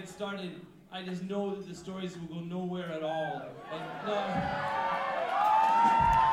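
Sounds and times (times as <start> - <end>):
speech: 0.0 - 5.0
crowd cheering and shouting: 3.2 - 6.3.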